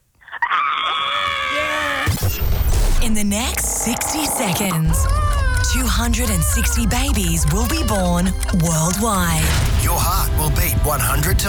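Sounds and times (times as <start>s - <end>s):
person screaming: 0.3s - 2.2s, 3.9s - 8.1s
speech: 3.1s - 11.4s.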